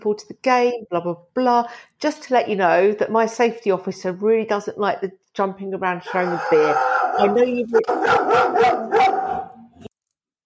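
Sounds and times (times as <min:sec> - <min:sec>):
speech: 0:00.0 - 0:09.2
dog barking at an arriving skip: 0:06.1 - 0:09.7.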